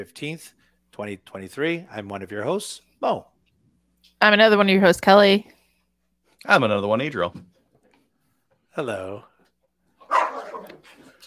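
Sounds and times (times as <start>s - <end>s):
speech: 0.0s - 3.3s, 4.1s - 5.6s, 6.4s - 7.5s, 8.8s - 9.3s
dog barking: 10.0s - 10.8s
dog yelping or whining: 10.0s - 10.9s.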